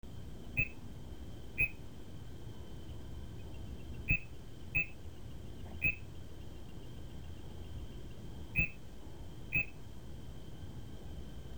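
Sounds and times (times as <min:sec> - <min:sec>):
low background hum: 0:00.0 - 0:11.5
tree frog chirping in Taiwan: 0:01.6 - 0:01.8, 0:04.1 - 0:05.0, 0:08.6 - 0:08.8.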